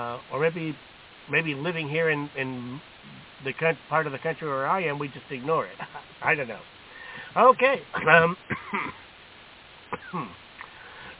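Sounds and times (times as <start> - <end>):
speech: 0.0 - 6.7, 7.4 - 9.0, 9.9 - 10.4
person coughing: 8.0 - 9.0, 9.9 - 10.4.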